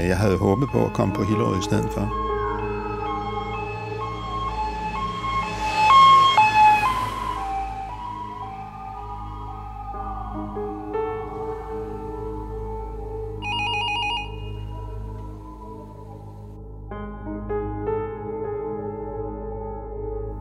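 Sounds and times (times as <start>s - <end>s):
speech: 0.0s - 2.2s
ambulance siren wailing two-tone on emergency run: 0.0s - 16.6s
low droning background: 0.0s - 20.3s
telephone ringing with trilling electronic tones: 13.4s - 15.0s.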